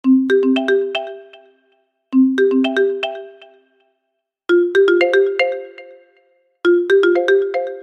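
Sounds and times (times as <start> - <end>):
marimba rhythm: 0.0 - 1.6, 2.2 - 3.6, 4.5 - 6.1, 6.7 - 7.8.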